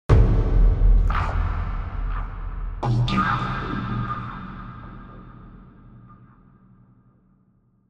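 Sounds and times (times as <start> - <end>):
big dark cinematic sound design hit: 0.1 - 6.0.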